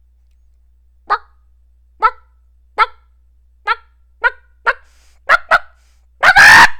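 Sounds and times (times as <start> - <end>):
person imitating a clucking chicken: 1.1 - 1.3, 2.0 - 3.0, 3.6 - 6.7.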